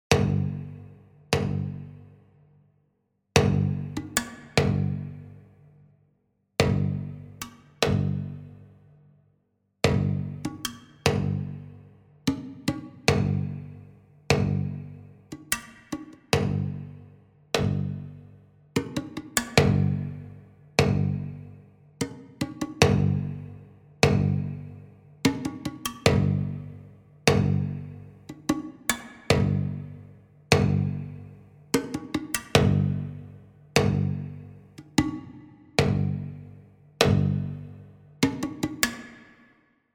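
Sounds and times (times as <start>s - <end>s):
ethnic groove music: 3.4s - 5.6s, 6.6s - 8.9s, 9.8s - 39.4s.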